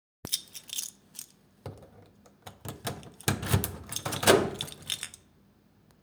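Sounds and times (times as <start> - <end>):
keys rattling: 0.3 - 5.3
door unlocking and locking: 1.7 - 5.2.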